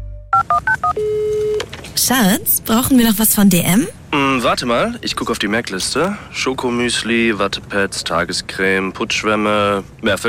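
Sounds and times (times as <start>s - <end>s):
mobile phone electronic beeps: 0.3s - 1.6s
mobile phone sustained tone: 0.4s - 3.1s
speech: 2.1s - 10.2s.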